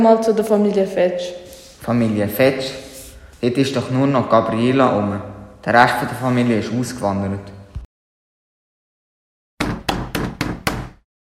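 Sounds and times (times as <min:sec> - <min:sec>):
speech: 0:00.0 - 0:07.6
firm knocking on a door: 0:09.6 - 0:11.0.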